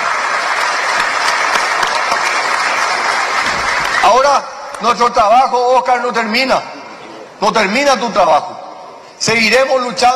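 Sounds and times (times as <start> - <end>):
crowd applauding: 0.0 - 4.5
speech: 4.1 - 6.7, 7.4 - 8.6, 9.2 - 10.1.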